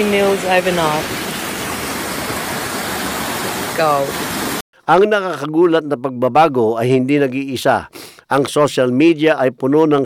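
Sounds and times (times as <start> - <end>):
speech: 0.0 - 1.2, 3.8 - 4.3, 4.9 - 10.0
strong flowing water rushing into a once-dry dam: 0.0 - 4.6.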